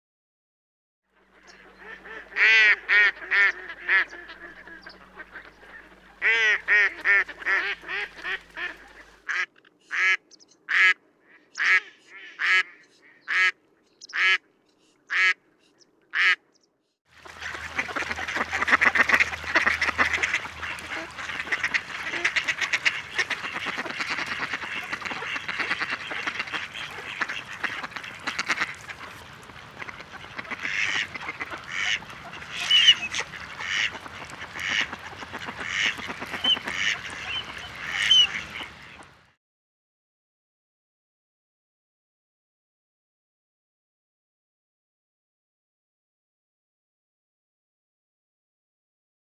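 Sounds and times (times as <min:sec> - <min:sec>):
mallard duck: 0:01.2 - 0:14.5, 0:15.1 - 0:15.4, 0:16.1 - 0:16.5, 0:17.2 - 0:39.3.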